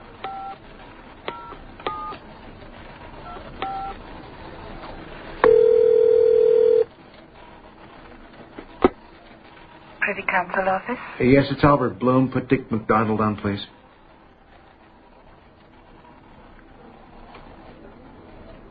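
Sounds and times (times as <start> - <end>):
telephone keypad tones beeping during dialing: 5.4 - 6.9
speech: 10.4 - 13.8.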